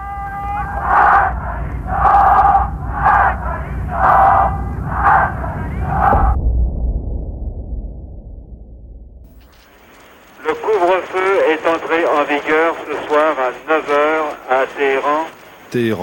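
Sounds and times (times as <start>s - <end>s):
women and men chanting a political slogan at a street protest in Tehran: 0.0s - 6.2s
low rumbling crowd noise: 0.0s - 6.4s, 9.3s - 15.8s.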